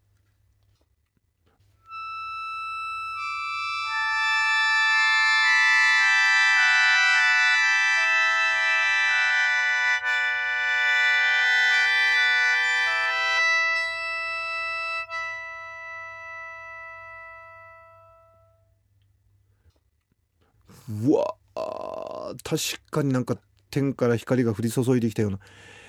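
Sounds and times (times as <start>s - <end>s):
Japanese sho mouth organ with lacquered bowl-shaped base playing a chord: 1.9s - 18.6s
speech: 22.5s - 25.8s.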